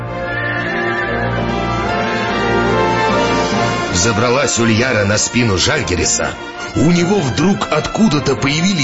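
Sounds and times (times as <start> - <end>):
horse neighing in a loud sustained whinny: 0.1 - 3.5
speech: 4.0 - 8.8.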